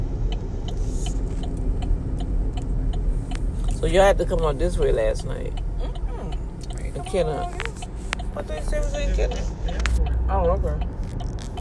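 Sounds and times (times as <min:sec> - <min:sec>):
car engine rumbling in traffic: 0:00.0 - 0:11.5
road noise from inside a vehicle: 0:00.0 - 0:11.5
turn signal clicking: 0:00.0 - 0:11.5
speech: 0:03.8 - 0:05.7, 0:07.0 - 0:07.6, 0:08.4 - 0:10.9.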